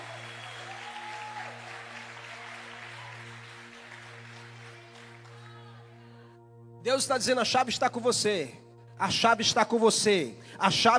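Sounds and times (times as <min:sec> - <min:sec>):
congregation applauding: 0:00.0 - 0:05.6
sustained keyboard chord droning: 0:00.0 - 0:10.9
speech: 0:06.8 - 0:10.9.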